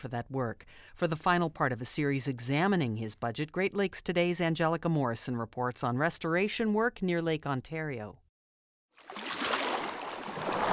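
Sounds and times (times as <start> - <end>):
speech: 0.0 - 8.2
small waves lapping against the lower Niagara River shoreline: 9.0 - 10.7.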